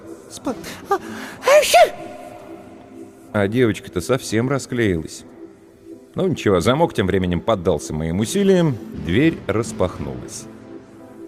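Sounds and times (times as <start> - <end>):
speech: 0.3 - 2.2, 3.4 - 5.3, 6.1 - 10.6
short gasping intakes of breath: 0.6 - 3.3
woman with a cold sneezing: 1.0 - 2.7.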